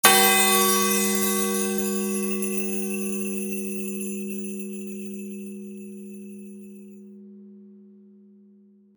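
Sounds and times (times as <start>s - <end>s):
Christmas bells jingling: 0.0s - 6.9s.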